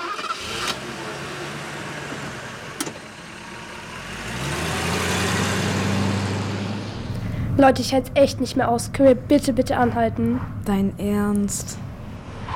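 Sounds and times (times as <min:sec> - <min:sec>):
car engine starting and car pulling away: 0:00.0 - 0:08.3
speech: 0:07.6 - 0:11.9.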